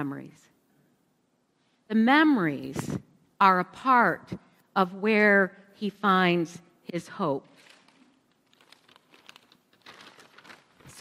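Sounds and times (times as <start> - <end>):
speech: 0.0 - 0.6, 1.9 - 7.6
paper bag crinkling and rustling as it is handled: 7.5 - 10.9.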